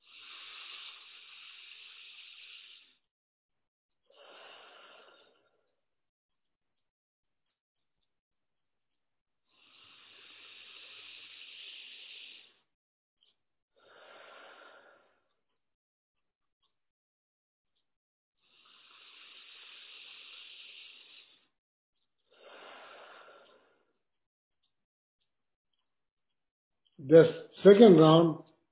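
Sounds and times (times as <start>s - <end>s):
forceful breaths through the right nostril in a breathing exercise: 0.0s - 3.0s, 4.1s - 5.6s, 9.5s - 12.6s, 13.8s - 15.3s, 18.4s - 21.6s, 22.3s - 23.9s
speech: 27.0s - 28.4s.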